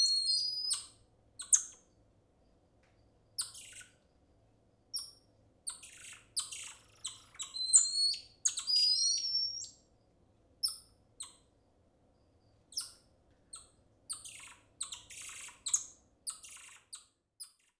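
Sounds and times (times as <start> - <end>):
golden lion tamarin high chirps and gliding whistled notes: 0.0 - 1.8, 3.4 - 4.0, 5.0 - 9.8, 13.6 - 17.0.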